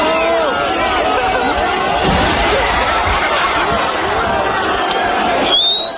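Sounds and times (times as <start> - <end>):
dense noisy crowd shouting and cheering: 0.0 - 5.9
laughter: 0.2 - 5.5
heavy metallic thumps: 2.0 - 3.8.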